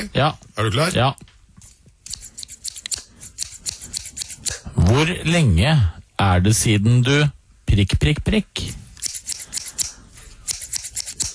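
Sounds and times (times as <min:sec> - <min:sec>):
speech: 0:00.0 - 0:01.3, 0:04.8 - 0:08.8
scissors snipping to create a jingle: 0:01.6 - 0:04.6, 0:09.0 - 0:11.3.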